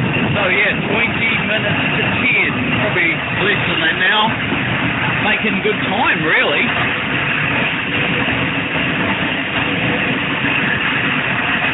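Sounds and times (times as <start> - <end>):
train engines labouring while climbing uphill: 0.0 - 11.7.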